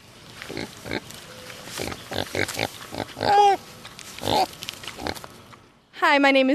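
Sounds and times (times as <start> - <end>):
potbelly pig grunting and snorting: 0.5 - 1.1, 1.8 - 3.6, 4.2 - 5.2
potbelly pig squealing: 1.7 - 3.6, 4.2 - 5.2.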